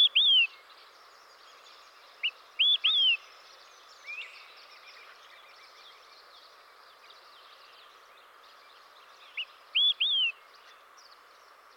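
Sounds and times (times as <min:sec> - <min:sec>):
background hiss: 0:00.0 - 0:11.7
Olive-sided flycatcher singing loud whistled notes: 0:02.2 - 0:03.3, 0:09.3 - 0:10.4.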